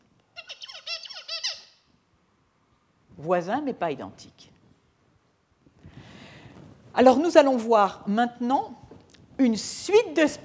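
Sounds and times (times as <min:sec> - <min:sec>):
recorded song of a tutor songbird with FOXP2 RNA interference: 0:00.4 - 0:01.8
speech: 0:03.2 - 0:04.5, 0:07.0 - 0:08.8, 0:09.4 - 0:10.4.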